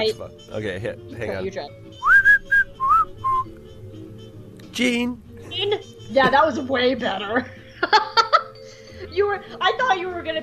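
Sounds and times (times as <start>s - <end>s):
speech: 0.0s - 2.3s, 4.8s - 8.1s, 9.0s - 10.4s
person whistling a short wobbly tune: 2.0s - 3.6s
laughter: 7.3s - 8.6s.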